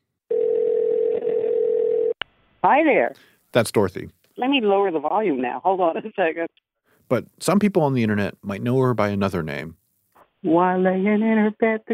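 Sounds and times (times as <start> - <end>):
telephone line ringing with an electronic tone: 0.3 - 2.2
speech: 2.6 - 9.8, 10.4 - 11.9.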